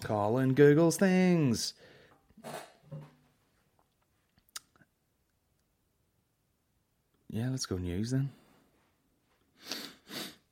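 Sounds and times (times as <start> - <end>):
speech: 0.0 - 3.1, 7.3 - 8.4
quick nasal sniffs: 9.6 - 10.4.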